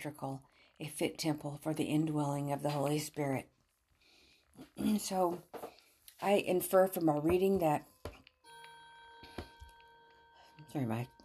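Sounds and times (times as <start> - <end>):
speech: 0.0 - 3.6, 4.6 - 7.9, 10.7 - 11.2
clock alarm ringing: 7.6 - 11.2.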